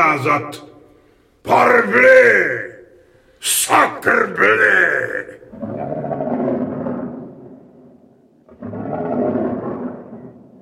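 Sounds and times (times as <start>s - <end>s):
speech: 0.0s - 0.8s, 1.4s - 2.8s, 3.4s - 6.2s
huge lion roaring: 5.5s - 10.5s.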